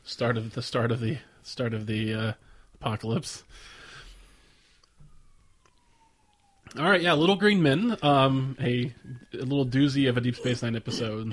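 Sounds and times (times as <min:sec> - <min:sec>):
speech: 0:00.1 - 0:03.8, 0:06.7 - 0:11.3
police siren wailing from a passing vehicle: 0:02.4 - 0:11.3
soft clicks: 0:04.8 - 0:06.8.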